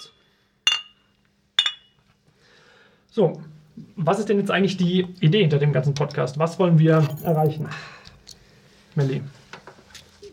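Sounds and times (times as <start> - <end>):
glasses clinking together in a toast: 0.7 - 2.0
speech: 3.2 - 8.0, 9.0 - 9.4.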